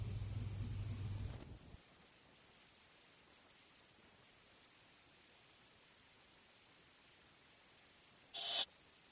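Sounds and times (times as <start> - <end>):
quiet hiss: 0.0 - 9.1
computer alert tone when a podcast download finishes: 8.4 - 8.7.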